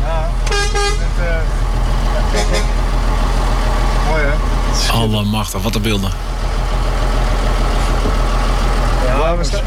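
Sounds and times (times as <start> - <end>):
convoy of vehicles driving, engine drone: 0.0 - 9.6
convoy vehicle horn toots: 0.4 - 1.2, 2.3 - 2.8
speech: 5.0 - 6.6, 9.3 - 9.6.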